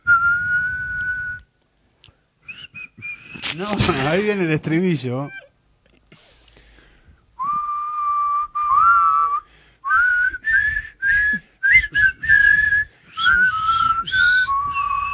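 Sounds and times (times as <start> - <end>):
person whistling a tune: 0.0 - 1.5, 2.4 - 3.5, 7.4 - 15.1
speech: 3.5 - 5.4.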